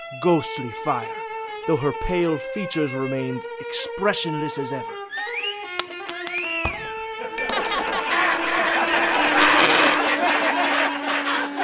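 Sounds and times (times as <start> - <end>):
speech: 0.1 - 5.4
coins tossed by a crowd into a sombrero: 5.8 - 8.6, 9.3 - 10.0
laughter: 7.6 - 11.6.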